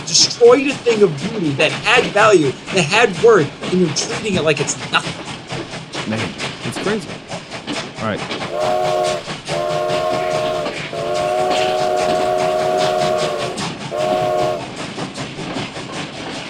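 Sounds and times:
rumble and clatter of a passing train: 0:00.0 - 0:16.4
speech: 0:00.1 - 0:05.3, 0:06.1 - 0:07.3, 0:08.0 - 0:09.3
loud train whistle blasts: 0:08.4 - 0:14.8.

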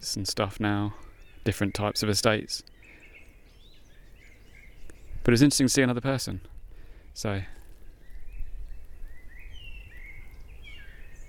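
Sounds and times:
speech: 0:00.0 - 0:02.7, 0:05.2 - 0:06.6, 0:07.2 - 0:07.6
steady low rumble of wind: 0:00.0 - 0:11.2
blackbird singing: 0:00.6 - 0:05.8, 0:07.6 - 0:11.2.

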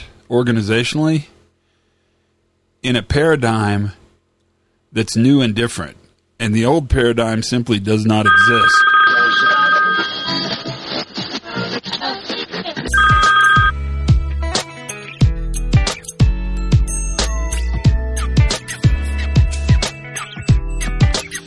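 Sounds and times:
speech: 0:00.3 - 0:01.4, 0:02.8 - 0:04.0, 0:04.9 - 0:08.9
telephone ringing: 0:08.2 - 0:10.8, 0:12.9 - 0:13.8
rhythmic music with heavy bass hits: 0:12.9 - 0:21.4.

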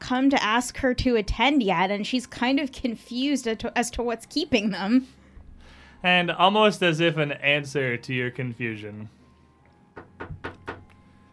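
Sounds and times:
speech: 0:00.1 - 0:05.2, 0:06.0 - 0:09.2
quick knocking on a wooden front door: 0:09.9 - 0:10.9.

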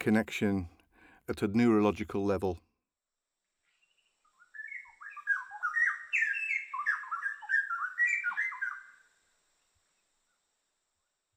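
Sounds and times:
speech: 0:00.0 - 0:02.6
straw-headed bulbul singing: 0:04.4 - 0:09.0.

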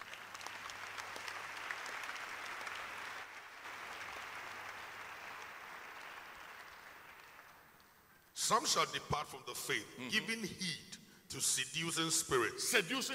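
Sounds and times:
audience clapping: 0:00.0 - 0:08.4
speech: 0:08.5 - 0:13.1.

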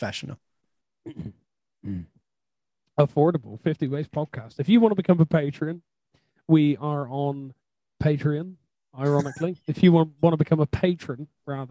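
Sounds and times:
speech: 0:00.0 - 0:02.2, 0:03.0 - 0:05.9, 0:06.5 - 0:11.6
coughs turned away from the microphone: 0:01.1 - 0:01.4, 0:09.1 - 0:09.5.

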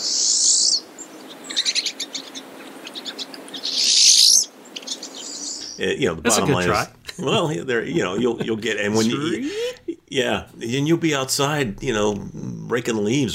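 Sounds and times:
pine siskin rising zipper-like zeep call: 0:00.0 - 0:06.0
speech: 0:05.8 - 0:13.3
laughter: 0:05.9 - 0:10.8.

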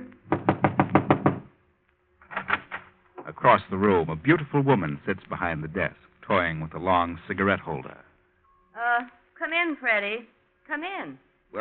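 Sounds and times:
knocks on a wooden cafe manager's door: 0:00.3 - 0:01.5
speech: 0:03.4 - 0:08.1, 0:09.0 - 0:11.5.

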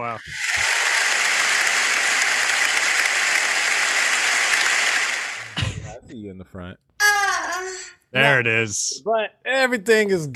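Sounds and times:
audience applause: 0:00.2 - 0:05.6
speech: 0:06.4 - 0:06.9, 0:08.1 - 0:10.3.

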